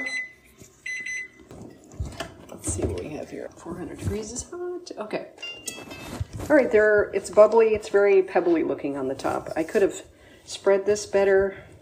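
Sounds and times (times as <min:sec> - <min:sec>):
kitchen timer beeping: 0:00.0 - 0:01.4
speech: 0:02.7 - 0:11.7.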